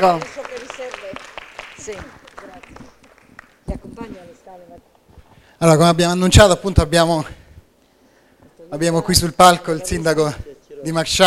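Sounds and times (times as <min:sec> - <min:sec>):
speech: 0:00.0 - 0:00.4, 0:01.8 - 0:02.2, 0:05.6 - 0:07.4, 0:08.7 - 0:11.2
room full of people clapping to welcome guests on stage: 0:00.0 - 0:03.7.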